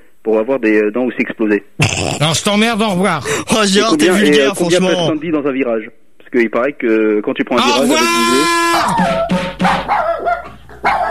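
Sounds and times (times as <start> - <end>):
speech: 0.2 - 11.0
dog barking in sharp yaps with whiny yelping tones: 8.8 - 11.0.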